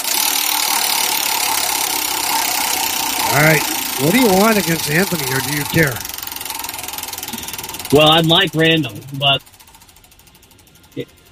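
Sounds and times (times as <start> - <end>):
prize wheel being spun: 0.0 - 11.3
speech: 3.4 - 6.1, 7.9 - 9.5, 11.0 - 11.3.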